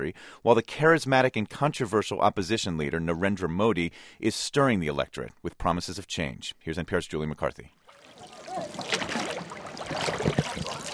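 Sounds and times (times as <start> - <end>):
speech: 0.0 - 7.8
wooden boat paddled along a river, water sloshing and splashing: 7.9 - 10.9.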